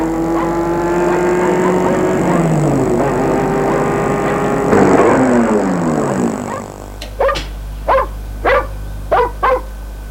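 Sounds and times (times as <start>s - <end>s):
vehicle engine droning and whining as it pulls in: 0.0s - 9.2s
dog barking: 0.3s - 2.6s, 6.3s - 10.0s.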